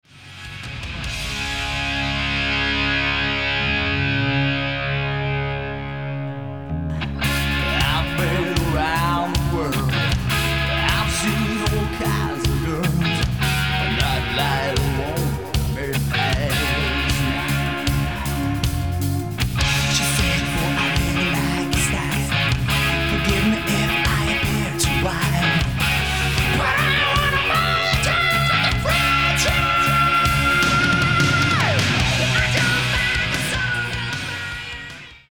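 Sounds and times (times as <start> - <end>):
chords: 1.2 - 34.5
rhythm: 7.1 - 34.7.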